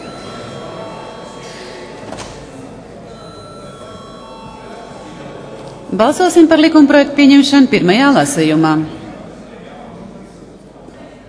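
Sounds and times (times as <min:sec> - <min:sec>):
parliamentary voting bell ringing in the Latvian Saeima: 0:00.0 - 0:02.1, 0:03.0 - 0:07.4
speech: 0:05.9 - 0:09.0.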